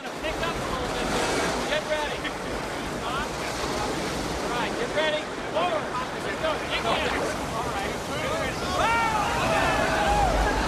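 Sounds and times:
churning whitewater of river rapids rushing: 0:00.0 - 0:10.6
people shouting and whooping excitedly over the water: 0:08.2 - 0:10.6.

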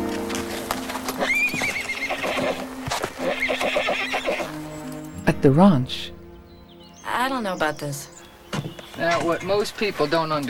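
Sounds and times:
hooves clopping on hard ground: 0:00.0 - 0:05.2, 0:08.1 - 0:10.4
horse whinnying: 0:00.4 - 0:05.0
speech: 0:05.4 - 0:06.1, 0:07.3 - 0:08.1, 0:09.0 - 0:10.4.

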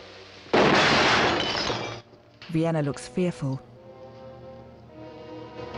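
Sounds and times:
glass window shattering from a gunshot bullet: 0:00.5 - 0:02.1
speech: 0:02.5 - 0:03.7.

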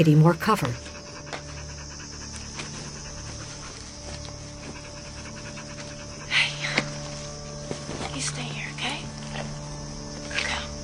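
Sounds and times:
speech: 0:00.0 - 0:00.9
dog panting: 0:00.2 - 0:08.5.

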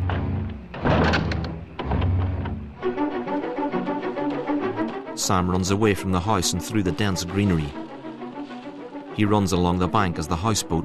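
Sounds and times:
door swinging open and being shut: 0:00.0 - 0:02.6
steady tonal sound: 0:01.7 - 0:10.8
speech: 0:05.2 - 0:07.8, 0:09.2 - 0:10.8.

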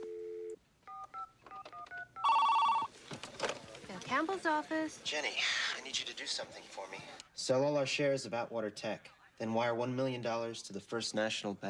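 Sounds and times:
telephone dial tone: 0:00.0 - 0:01.2, 0:02.2 - 0:02.9
speech: 0:04.2 - 0:11.6.

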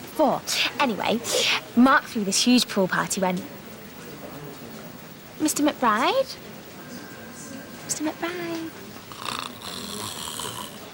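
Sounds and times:
speech: 0:00.2 - 0:03.6, 0:05.4 - 0:06.5, 0:07.9 - 0:08.8
man snoring: 0:09.1 - 0:10.9.

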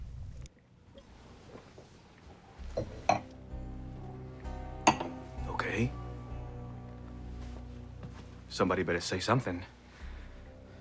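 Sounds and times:
two drinking glasses clinking together: 0:02.7 - 0:03.3, 0:04.8 - 0:05.2
speech: 0:05.8 - 0:06.0, 0:08.6 - 0:09.8.

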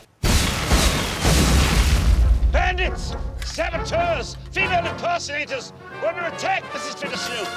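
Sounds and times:
explosion from a laboratory experiment: 0:00.2 - 0:02.9
speech: 0:02.8 - 0:07.5.

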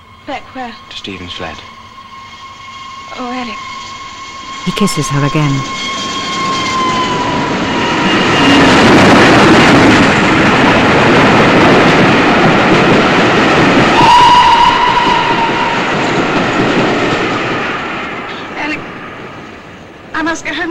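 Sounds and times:
sharp steady whistle: 0:00.0 - 0:08.8, 0:13.9 - 0:16.7
train rumbling and clattering at a railway station: 0:00.0 - 0:20.6
speech: 0:00.3 - 0:01.8, 0:03.1 - 0:03.8, 0:04.6 - 0:05.9.

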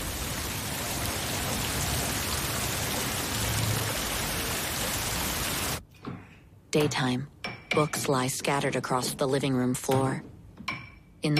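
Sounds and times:
heavy rain pouring down outdoors around a tree by a balcony: 0:00.0 - 0:05.8
speech: 0:06.8 - 0:10.3.

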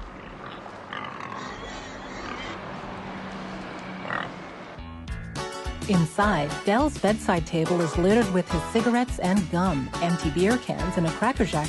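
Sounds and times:
herd of pigs grunting and oinking while foraging in a brown field: 0:00.0 - 0:02.7, 0:04.0 - 0:04.4
pig squeals: 0:00.0 - 0:02.8
pigs snuffling while foraging: 0:00.0 - 0:04.4
speech: 0:05.9 - 0:11.6.

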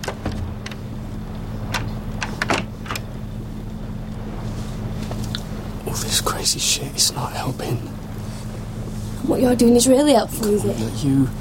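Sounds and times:
bedroom door being shut and locked: 0:00.0 - 0:00.8, 0:01.7 - 0:03.1
low mechanical hum and rumble: 0:00.0 - 0:11.4
speech: 0:06.0 - 0:08.0, 0:09.3 - 0:11.4.

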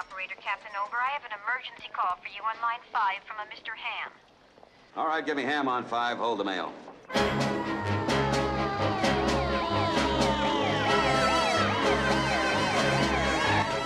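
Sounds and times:
speech: 0:00.2 - 0:04.3, 0:05.0 - 0:08.0
ambulance siren wailing on a runway: 0:07.1 - 0:13.8.

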